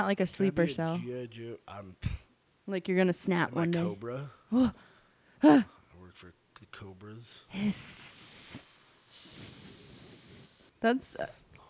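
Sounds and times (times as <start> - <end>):
speech: 0.0 - 8.1, 10.8 - 11.4
person hissing like a snake: 7.6 - 11.4.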